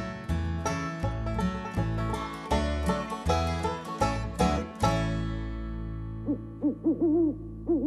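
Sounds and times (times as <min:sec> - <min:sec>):
strummed musical chords from a song: 0:00.0 - 0:06.6
wavering owl-like hoots: 0:06.3 - 0:07.8.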